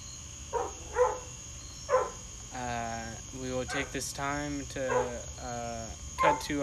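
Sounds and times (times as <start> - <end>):
dog barking: 0.5 - 1.3, 1.9 - 2.2, 3.7 - 4.0, 4.9 - 5.2, 6.2 - 6.6
speech: 3.6 - 6.6.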